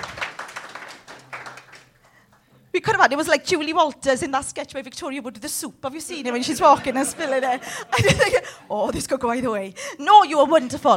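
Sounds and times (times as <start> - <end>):
audience applause: 0.0 - 2.2
speech: 2.8 - 10.9
laughter: 6.4 - 8.9.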